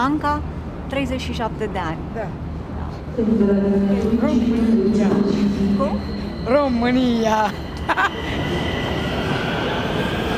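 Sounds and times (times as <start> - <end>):
speech: 0.0 - 2.5, 3.2 - 9.0
metro train rumbling through a station: 0.0 - 10.3
high whine of metro train motors and wheels: 3.1 - 10.3.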